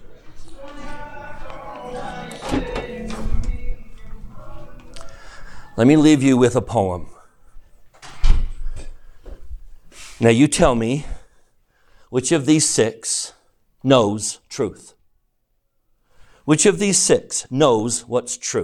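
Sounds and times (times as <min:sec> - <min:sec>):
door pushed shut with a solid thud: 0:02.4 - 0:03.7, 0:08.0 - 0:08.6
speech: 0:05.8 - 0:07.1, 0:10.2 - 0:11.1, 0:12.1 - 0:15.0, 0:16.5 - 0:18.6.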